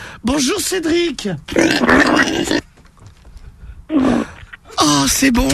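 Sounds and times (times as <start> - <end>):
speech: 0.2 - 2.7, 5.0 - 5.5
pig grunting and oinking: 1.5 - 2.6.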